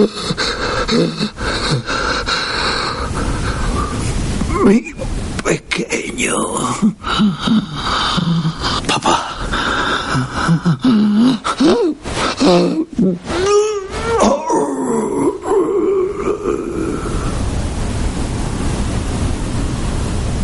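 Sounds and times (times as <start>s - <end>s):
speech: 0.0s - 2.0s, 4.6s - 8.8s, 12.5s - 13.6s
person moaning and gasping in broken sobs: 0.0s - 2.2s, 6.6s - 17.4s
steady hiss: 0.0s - 20.4s.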